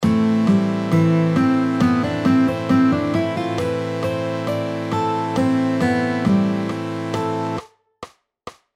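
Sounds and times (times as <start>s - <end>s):
guitar lick: 0.0s - 7.6s.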